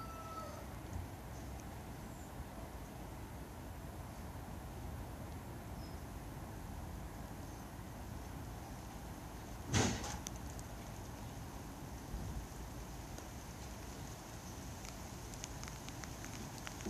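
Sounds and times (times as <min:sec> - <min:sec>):
city murmur heard from a garden: 0:00.0 - 0:16.8
faint ticks: 0:14.5 - 0:16.8.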